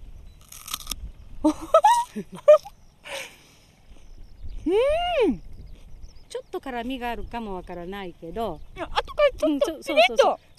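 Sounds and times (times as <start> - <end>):
biting and chewing a raw pungent round bulb: 0.4 - 1.0
speech: 1.4 - 2.6, 6.6 - 10.5.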